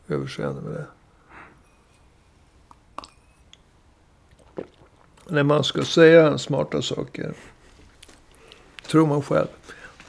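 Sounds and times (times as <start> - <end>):
speech: 0.1 - 1.0, 5.3 - 7.6, 8.9 - 9.8
person taking a sip of water: 2.7 - 5.9, 7.8 - 8.9.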